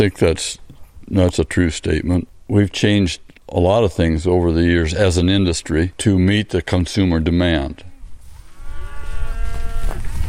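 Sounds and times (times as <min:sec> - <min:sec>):
speech: 0:00.0 - 0:07.9
rumbling outdoor background on a ranch: 0:00.0 - 0:10.2
black Angus cattle lowing on a ranch: 0:08.5 - 0:10.1.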